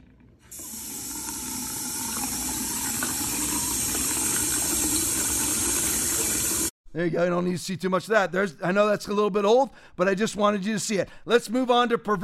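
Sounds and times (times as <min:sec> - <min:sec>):
tap water running: 0:00.4 - 0:06.7
speech: 0:07.0 - 0:12.2.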